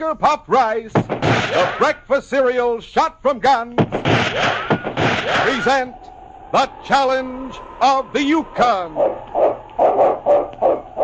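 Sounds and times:
speech: 0:00.0 - 0:11.0
lead sled dog barking: 0:09.0 - 0:11.0.

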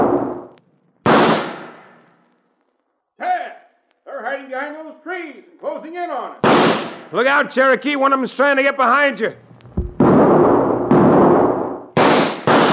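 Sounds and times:
carbine rifle shots in a shootout: 0:00.0 - 0:02.0, 0:06.4 - 0:07.1, 0:09.8 - 0:12.7
speech: 0:04.3 - 0:09.4.

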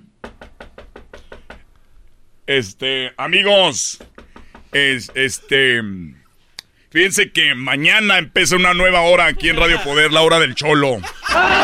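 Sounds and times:
hiss: 0:00.0 - 0:11.5
sharp knocks on a door: 0:00.2 - 0:01.6, 0:04.0 - 0:05.3
speech: 0:02.5 - 0:04.1, 0:04.7 - 0:06.2, 0:06.9 - 0:11.6
laughter: 0:08.9 - 0:11.6.

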